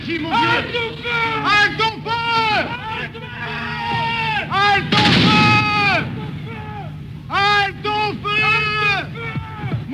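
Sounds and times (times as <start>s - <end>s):
people shouting pleas: 0.2s - 9.9s
panicked crowd screaming: 0.3s - 9.9s
gunfire cracks: 4.9s - 5.9s.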